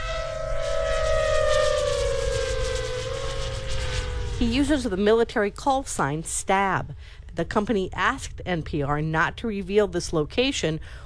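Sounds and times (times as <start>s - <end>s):
drone motor buzzing whine: 0.0s - 5.2s
low rumbling background: 0.0s - 11.0s
speech: 4.4s - 11.0s.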